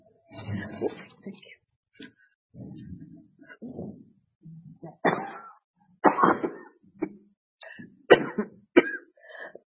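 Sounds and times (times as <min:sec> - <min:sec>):
speech: 0:00.5 - 0:01.0
person coughing harshly and wheezily from asthma: 0:04.9 - 0:07.2, 0:08.1 - 0:09.6.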